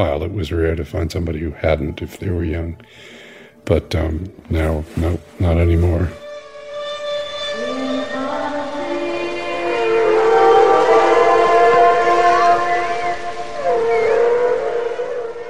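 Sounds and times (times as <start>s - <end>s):
speech: 0.0s - 6.2s
humpback whale song: 6.2s - 15.4s.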